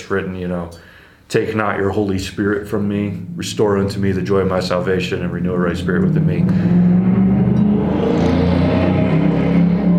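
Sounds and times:
speech: 0.0 - 7.0
loud car engine passing by: 5.3 - 9.9.

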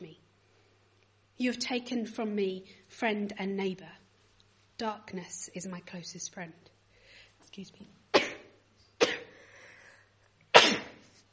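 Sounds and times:
speech: 1.4 - 4.0, 4.8 - 6.7, 7.5 - 8.0
soft intake of breath: 6.9 - 7.4, 9.3 - 10.2
person sneezing: 8.2 - 9.5, 10.5 - 11.2.

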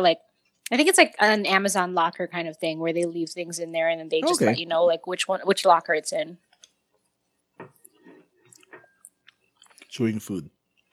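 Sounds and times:
speech: 0.0 - 6.5, 9.9 - 10.6
person chewing dumplings with smacking and clicking mouth noises: 7.8 - 9.9.

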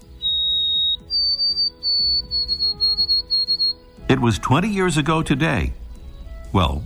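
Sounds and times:
steady pulsing low background: 0.0 - 3.6
White-throated Sparrow singing: 0.0 - 3.8
speech: 4.1 - 5.8, 6.5 - 6.8.

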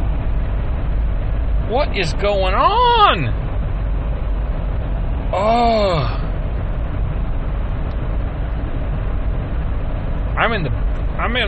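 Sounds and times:
car road rumble and engine drone at highway speed at night: 0.0 - 11.4
speech: 1.7 - 3.4, 5.3 - 6.3, 10.4 - 11.4.

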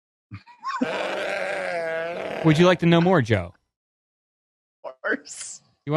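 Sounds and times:
sheep bleating: 0.8 - 2.6
speech: 2.4 - 3.6, 5.2 - 5.9.

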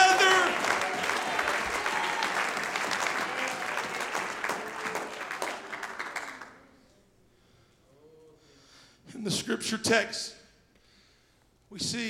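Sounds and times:
room full of people applauding: 0.0 - 6.8
speech: 9.2 - 10.4, 11.8 - 12.0.

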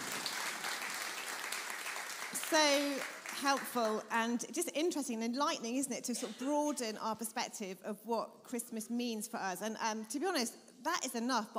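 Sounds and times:
audience applause: 0.0 - 4.0
speech: 2.4 - 11.5.

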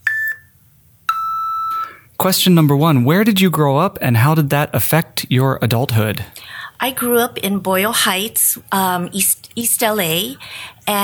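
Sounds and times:
electronic timer beeps: 0.0 - 0.5, 1.1 - 2.0
speech: 2.2 - 11.0.

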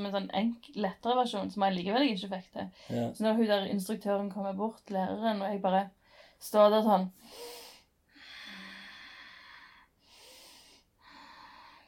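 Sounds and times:
speech: 0.0 - 7.6
slow deliberate yoga-style breathing: 7.2 - 11.8.

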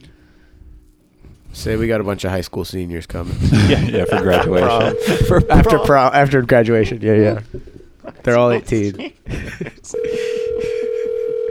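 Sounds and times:
faint voices: 1.5 - 9.4
speech: 1.6 - 10.0
laughter: 3.4 - 6.0, 6.9 - 11.1
steady electronic telephone tone on the line: 3.9 - 5.9, 10.0 - 11.4.

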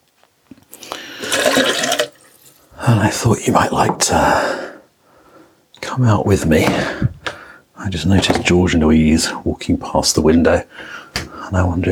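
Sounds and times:
tea pouring into a cup: 0.7 - 2.7
speech: 2.9 - 4.7, 6.0 - 7.2, 7.8 - 11.8.

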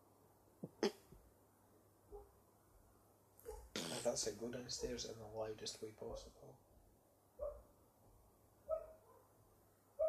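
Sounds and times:
somewhat dog barks: 2.1 - 2.4, 3.4 - 3.7, 6.0 - 6.4, 7.4 - 7.7, 8.7 - 9.4
speech: 4.0 - 6.7.

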